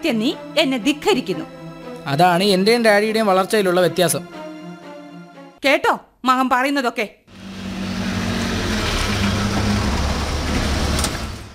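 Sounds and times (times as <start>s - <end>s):
speech: 0.0s - 4.4s, 5.6s - 7.2s
vehicle engine rumbling as a car arrives: 7.3s - 11.5s.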